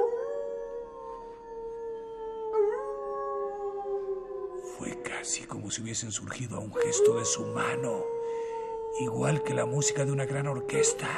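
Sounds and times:
pack of wolves howling: 0.0s - 11.1s
speech: 5.2s - 8.4s, 9.0s - 11.1s.

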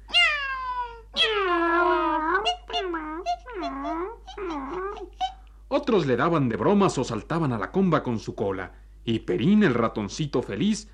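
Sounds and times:
cat meowing: 0.0s - 5.4s
speech: 5.8s - 10.9s.

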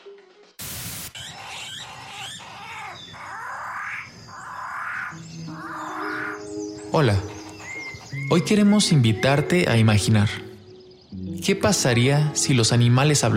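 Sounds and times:
sharp burst of noise: 0.6s - 1.8s
dense wash of nature sound: 0.6s - 13.3s
New Guinea tropical birds calling with rising whistling calls: 1.1s - 9.6s
speech: 6.9s - 7.3s, 8.3s - 10.5s, 11.4s - 13.3s.

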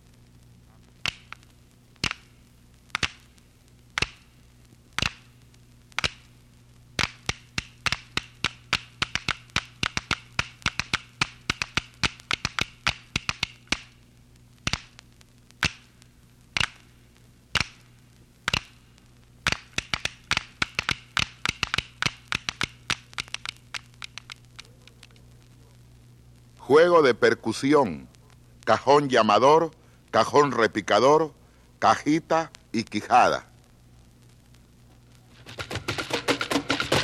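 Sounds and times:
faint low hum: 0.0s - 37.0s
tablitas South American wooden percussion instrument clacking: 7.0s - 13.9s, 19.5s - 24.7s, 35.4s - 37.0s
speech: 26.7s - 28.1s, 28.7s - 33.5s.

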